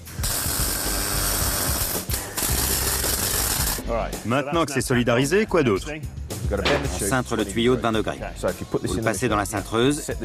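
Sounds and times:
welding arc crackling as a pipe is welded to a collar for a car part: 0:00.0 - 0:03.8
speech: 0:03.9 - 0:10.2.

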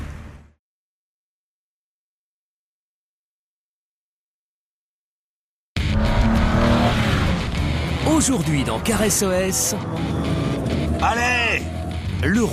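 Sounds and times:
tires squealing: 0:05.8 - 0:12.2
car engine revving: 0:05.8 - 0:12.5
speech: 0:08.2 - 0:10.2, 0:11.0 - 0:12.5.

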